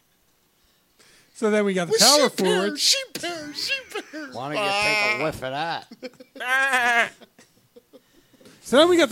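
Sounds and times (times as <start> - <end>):
speech: 1.4 - 7.4, 8.7 - 9.1
laughter: 2.0 - 8.2
sheep bleating: 4.4 - 5.4, 6.4 - 7.2.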